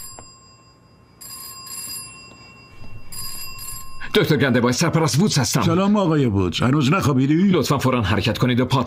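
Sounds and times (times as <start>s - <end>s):
telephone bell ringing: 0.0s - 4.9s
speech: 4.2s - 8.8s.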